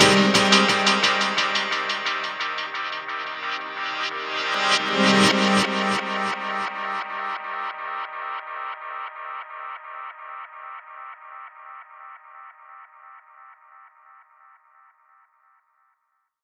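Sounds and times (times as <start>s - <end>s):
drum and bass keys: 0.0s - 7.5s.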